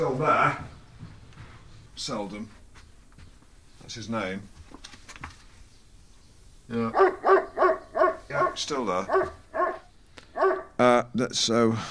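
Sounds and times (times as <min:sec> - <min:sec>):
speech: 0:00.0 - 0:00.8, 0:02.0 - 0:02.6, 0:03.9 - 0:04.6, 0:06.7 - 0:07.4, 0:08.3 - 0:09.4, 0:10.8 - 0:11.8
large dog barking: 0:06.9 - 0:10.8.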